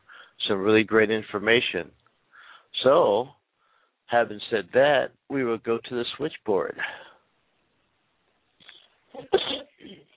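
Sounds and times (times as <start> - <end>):
speech: 0.5 - 2.0, 2.8 - 3.4, 4.1 - 7.0, 9.2 - 10.0
person sneezing: 9.2 - 10.0.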